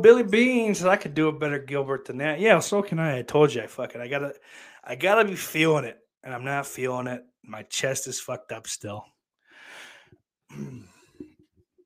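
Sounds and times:
speech: 0:00.0 - 0:09.1, 0:10.5 - 0:10.9
person coughing harshly: 0:10.5 - 0:11.0
person clearing throat roughly: 0:10.5 - 0:11.3.

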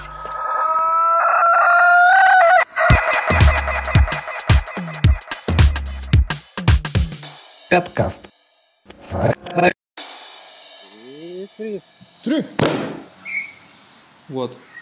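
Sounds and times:
rooster crowing: 0:00.0 - 0:05.4
agitated clucking and squawking: 0:02.2 - 0:05.8
speech: 0:07.7 - 0:08.3, 0:09.1 - 0:09.8, 0:11.6 - 0:13.0, 0:14.3 - 0:14.7.

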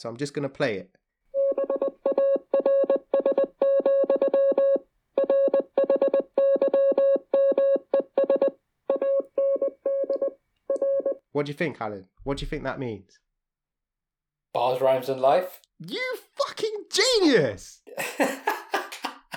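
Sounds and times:
speech: 0:00.0 - 0:01.0, 0:11.4 - 0:13.2, 0:14.5 - 0:18.5
Morse code beeps played from a phone: 0:01.4 - 0:11.2
laughter: 0:17.9 - 0:19.3.

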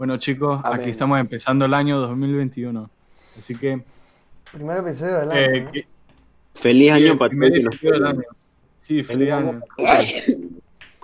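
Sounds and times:
speech: 0:00.0 - 0:05.9, 0:06.6 - 0:10.6
person sneezing: 0:09.8 - 0:10.5.

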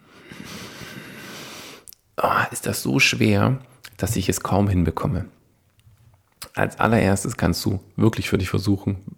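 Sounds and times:
strained breath drawn hard through a congested nose: 0:00.0 - 0:01.9
speech: 0:02.2 - 0:05.4, 0:06.6 - 0:09.1.

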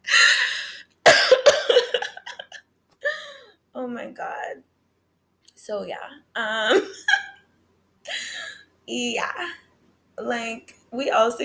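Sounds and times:
person coughing: 0:01.0 - 0:02.5
speech: 0:04.0 - 0:04.8, 0:05.6 - 0:07.2, 0:08.9 - 0:09.6, 0:10.2 - 0:11.4.

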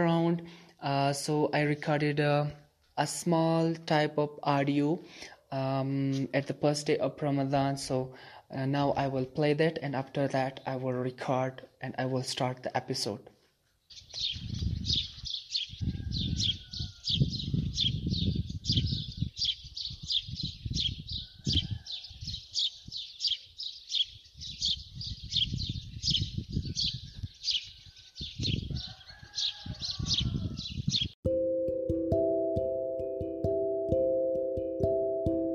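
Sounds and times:
speech: 0:00.0 - 0:13.3, 0:13.9 - 0:15.0
birds twittering: 0:13.8 - 0:31.2
steady harmonic tone: 0:31.3 - 0:35.5.

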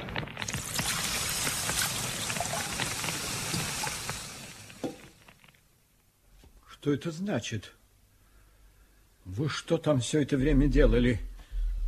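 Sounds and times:
bucket of water poured onto straw: 0:00.0 - 0:05.5
speech: 0:06.8 - 0:07.8, 0:09.4 - 0:11.3.

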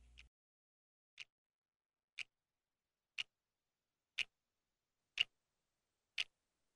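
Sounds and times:
clock ticking: 0:00.0 - 0:00.3, 0:03.2 - 0:03.4, 0:04.2 - 0:04.4, 0:05.1 - 0:05.4, 0:06.1 - 0:06.4.

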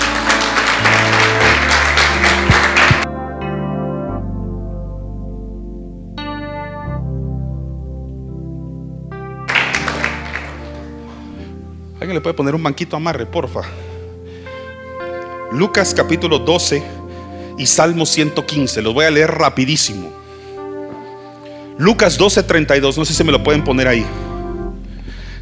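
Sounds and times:
audience applause: 0:00.0 - 0:03.1, 0:09.5 - 0:11.0
sustained keyboard chords: 0:00.0 - 0:25.4
speech: 0:12.2 - 0:13.9, 0:15.5 - 0:17.0, 0:17.6 - 0:20.2, 0:21.8 - 0:24.3.

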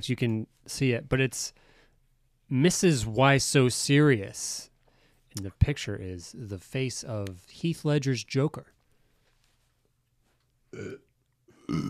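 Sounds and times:
speech: 0:00.0 - 0:01.7, 0:02.5 - 0:04.7, 0:05.3 - 0:08.8, 0:10.7 - 0:11.0, 0:11.7 - 0:11.8
loud burps: 0:10.7 - 0:11.8.

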